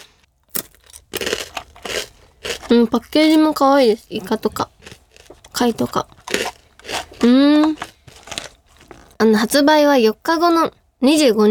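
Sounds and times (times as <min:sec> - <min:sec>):
crunchy blue seafood-flavoured potato sticks being bitten and chewed: 0:00.0 - 0:03.6, 0:04.8 - 0:09.1
speech: 0:02.7 - 0:04.8, 0:05.6 - 0:06.2, 0:07.2 - 0:07.8, 0:09.2 - 0:11.4.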